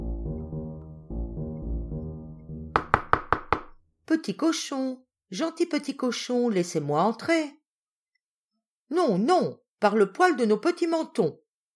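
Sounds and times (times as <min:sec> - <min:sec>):
soft gentle tonal music: 0:00.0 - 0:02.9
knocks on a wooden door: 0:02.7 - 0:03.8
speech: 0:04.1 - 0:07.6, 0:08.9 - 0:11.4.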